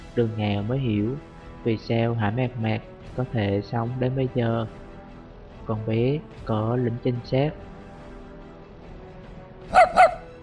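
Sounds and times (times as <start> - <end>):
speech: 0.2 - 4.8, 5.7 - 7.7
dog barking: 9.7 - 10.3.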